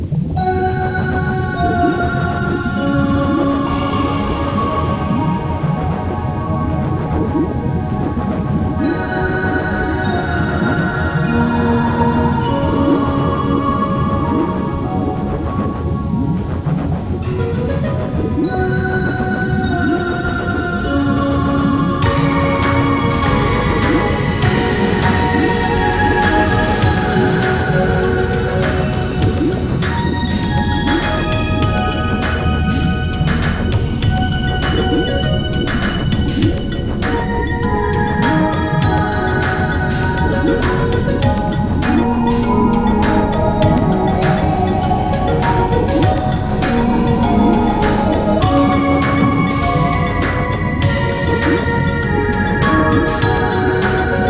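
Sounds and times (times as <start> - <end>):
music underwater: 0.0 - 54.2.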